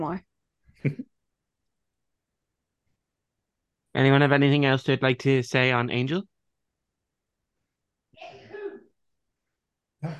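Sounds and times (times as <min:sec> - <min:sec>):
speech: 0:00.0 - 0:01.1, 0:04.0 - 0:06.3
sneeze: 0:08.2 - 0:08.9.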